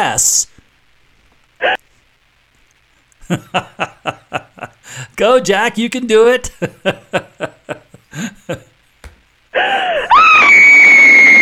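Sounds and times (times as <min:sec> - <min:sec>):
speech: 0:00.0 - 0:00.5, 0:03.3 - 0:04.2, 0:05.2 - 0:07.4
short breathy chuckles: 0:03.2 - 0:05.0, 0:06.7 - 0:08.7, 0:09.6 - 0:10.2
woman screaming: 0:09.6 - 0:11.4.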